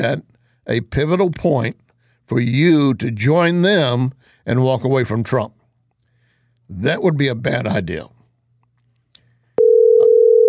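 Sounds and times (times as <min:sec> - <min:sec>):
speech: 0:00.0 - 0:05.6, 0:06.7 - 0:08.2
telephone dial tone of an outgoing call: 0:09.6 - 0:10.4.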